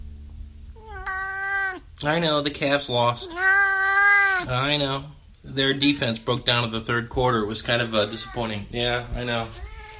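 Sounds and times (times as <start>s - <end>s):
cat meowing: 0.8s - 2.0s, 3.1s - 4.6s, 7.9s - 8.7s, 9.6s - 9.9s
speech: 2.0s - 3.7s, 4.4s - 9.7s.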